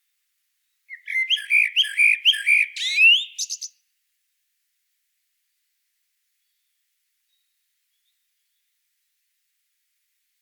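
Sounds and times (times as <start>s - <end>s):
common blackbird Turdus merula singing: 0.9s - 3.8s.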